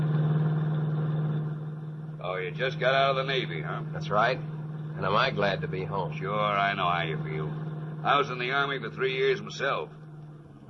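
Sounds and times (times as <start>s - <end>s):
small delivery truck engine running: 0.0s - 10.6s
speech: 2.3s - 10.0s.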